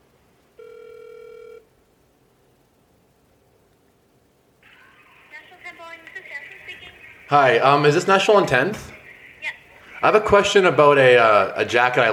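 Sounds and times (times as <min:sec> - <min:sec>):
single steady electronic telephone ring: 0:00.6 - 0:01.7
speech: 0:07.3 - 0:08.9, 0:10.0 - 0:12.1.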